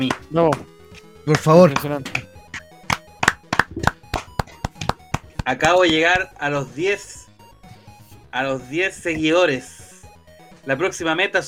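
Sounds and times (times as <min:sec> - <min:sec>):
hands clapping: 0:00.0 - 0:00.7, 0:01.3 - 0:06.2
speech: 0:00.0 - 0:02.2, 0:05.5 - 0:07.2, 0:08.4 - 0:09.8, 0:10.6 - 0:11.4.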